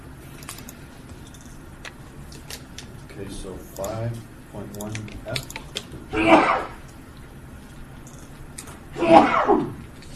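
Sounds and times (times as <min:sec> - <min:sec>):
quiet room hum: 0:00.0 - 0:10.1
speech: 0:03.2 - 0:06.8, 0:09.1 - 0:09.8
person sneezing: 0:06.1 - 0:06.8, 0:09.0 - 0:09.8.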